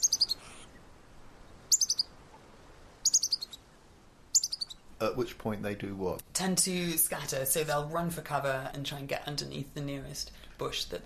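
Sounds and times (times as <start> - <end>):
bird aerial predator alarm call: 0.0 - 0.8, 1.7 - 2.2, 3.0 - 3.6, 4.3 - 4.9
speech: 5.0 - 11.0.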